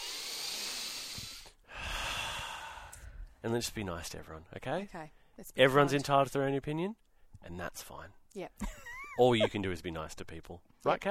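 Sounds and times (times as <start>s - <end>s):
deep breath: 0.0s - 3.4s
speech: 3.4s - 11.0s.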